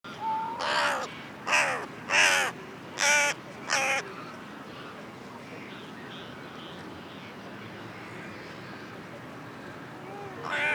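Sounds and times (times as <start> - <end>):
Carrion Crow giving harsh hoarse caws: 0.6 - 3.9.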